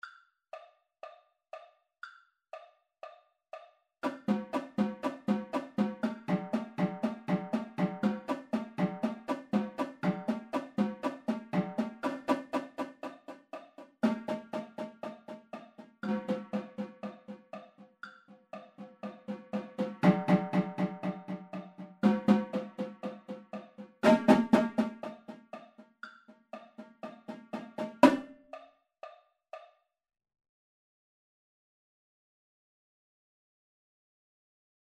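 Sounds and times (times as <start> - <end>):
tenor drums playing at 120 bpm: 4.0 - 17.8, 18.5 - 25.8, 26.6 - 28.3.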